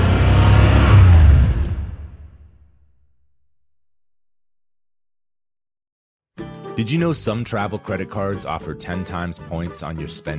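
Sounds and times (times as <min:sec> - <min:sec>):
car engine revving: 0:00.0 - 0:03.0
speech: 0:06.8 - 0:10.3.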